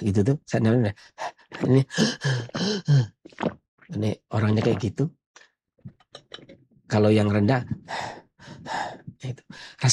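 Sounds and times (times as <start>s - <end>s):
speech: 0.0s - 5.2s, 5.8s - 9.9s
person imitating high-pitched wheezy panting: 1.9s - 3.1s.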